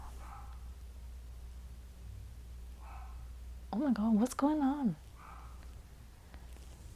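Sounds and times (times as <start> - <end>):
dog barking: 0.0 - 0.8, 2.8 - 3.4, 5.1 - 5.7
hiss: 0.0 - 6.9
steady low hum: 0.0 - 6.9
speech: 3.7 - 5.0.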